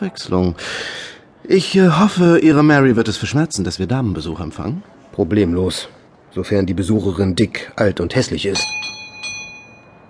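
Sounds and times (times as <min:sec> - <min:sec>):
speech: 0:00.0 - 0:09.0
doorbell chiming with bright metallic tones: 0:08.6 - 0:10.0.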